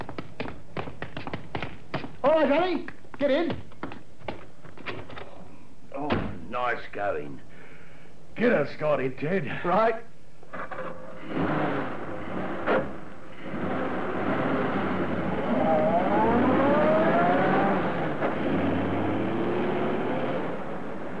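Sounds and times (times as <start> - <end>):
speech: 2.2 - 3.7, 6.0 - 7.5, 8.4 - 10.1
car engine revving up and accelerating: 10.6 - 21.1.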